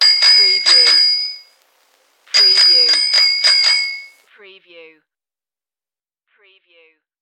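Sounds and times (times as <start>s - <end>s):
old bicycle bell: 0.0s - 1.6s, 2.3s - 4.3s.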